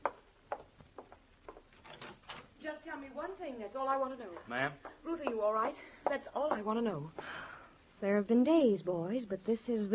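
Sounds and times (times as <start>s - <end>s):
door being opened with rattling handle: 1.8s - 2.5s
speech: 2.6s - 7.4s, 8.0s - 9.9s.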